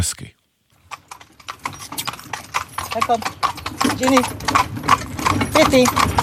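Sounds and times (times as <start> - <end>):
people talking: 0.0 - 0.3, 3.0 - 3.2, 3.9 - 4.3, 5.5 - 6.0
draft horses of a horse-drawn carriage clip-clopping on asphalt road on car-free island: 0.7 - 6.2.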